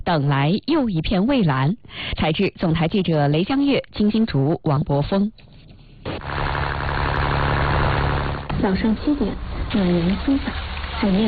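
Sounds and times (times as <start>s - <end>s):
speech: 0.1s - 5.5s, 8.6s - 11.2s
fishing boat motor starting up and running at a fishing port: 6.1s - 11.2s.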